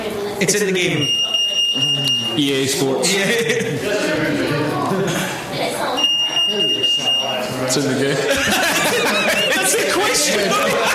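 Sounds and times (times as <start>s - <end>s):
voices chattering during a video game quiz: 0.0s - 10.9s
speech: 0.4s - 10.9s
high-pitched electronic quiz buzzer tone: 0.9s - 2.7s, 6.0s - 7.7s
laughter: 3.0s - 5.6s, 8.0s - 10.9s.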